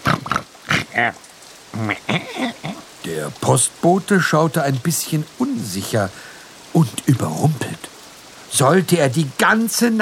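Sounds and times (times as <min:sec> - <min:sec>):
pigs grunting with short nasal snorts: 0:00.0 - 0:02.8
speech: 0:01.0 - 0:07.9, 0:08.5 - 0:10.0.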